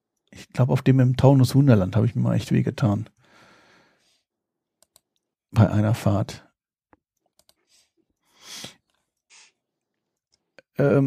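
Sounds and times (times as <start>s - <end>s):
speech: 0.4s - 3.2s, 5.5s - 6.5s, 10.8s - 11.0s
soft breathy noises: 3.2s - 4.3s, 7.5s - 9.7s
computer mouse clicking: 4.8s - 5.2s, 6.9s - 7.7s.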